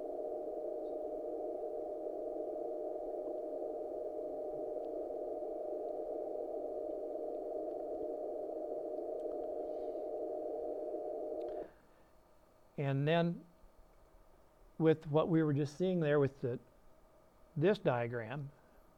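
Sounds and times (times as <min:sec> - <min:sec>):
faint distortion product pure tone: 0:00.0 - 0:11.8
steady hiss of band-limited noise: 0:00.0 - 0:18.9
speech: 0:12.8 - 0:13.5, 0:14.8 - 0:16.7, 0:17.6 - 0:18.6.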